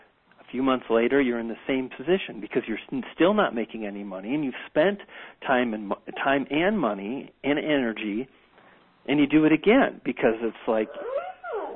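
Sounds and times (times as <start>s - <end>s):
speech: 0.5s - 8.4s, 9.0s - 11.2s
dog yawning: 10.9s - 11.7s.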